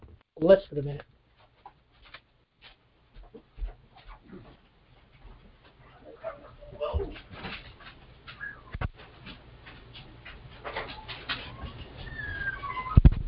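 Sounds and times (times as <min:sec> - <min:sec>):
speech: 0:00.4 - 0:01.1
dog whining and whimpering to be let outside: 0:08.3 - 0:08.8, 0:10.8 - 0:13.1.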